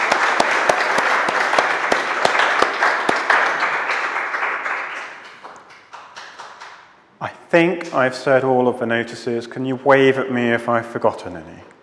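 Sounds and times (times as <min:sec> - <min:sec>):
room full of people applauding together: 0:00.0 - 0:07.0
sharper claps standing out from the applause: 0:00.0 - 0:07.0, 0:07.8 - 0:08.1
speech: 0:07.5 - 0:11.8.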